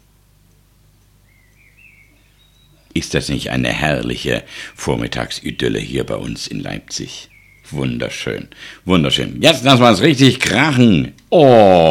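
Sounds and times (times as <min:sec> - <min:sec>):
steady low rumble of outdoor noise: 0:00.0 - 0:11.9
common blackbird singing faintly on a morning in Leipzig: 0:01.2 - 0:08.7
speech: 0:03.0 - 0:11.9.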